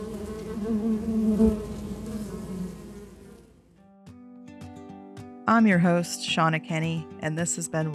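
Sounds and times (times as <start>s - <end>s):
dense buzzing of bees: 0.0s - 3.7s
speech: 5.5s - 7.9s.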